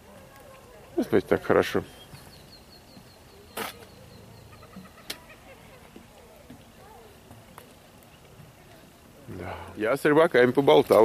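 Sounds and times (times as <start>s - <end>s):
low murmur: 0.0s - 11.0s
soft birdsong outdoors at a fishing spot: 0.6s - 8.3s
speech: 1.1s - 2.0s, 9.8s - 11.0s.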